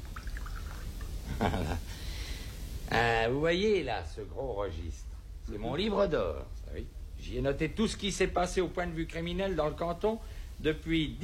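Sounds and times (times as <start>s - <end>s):
water poured into a glass of homemade absinthe: 0.0s - 1.6s
speech: 2.9s - 11.2s.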